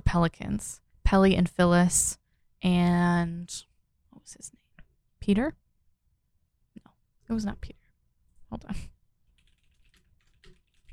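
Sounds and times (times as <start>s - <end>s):
speech: 0.1s - 4.6s, 5.2s - 5.6s, 7.3s - 7.8s, 8.5s - 8.9s
rapid typing on a loud computer keyboard: 9.3s - 10.9s.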